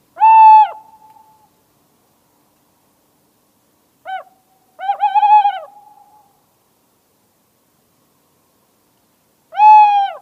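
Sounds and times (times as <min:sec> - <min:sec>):
tawny owl hooting: 0:00.2 - 0:01.4, 0:04.0 - 0:06.3, 0:09.5 - 0:10.2.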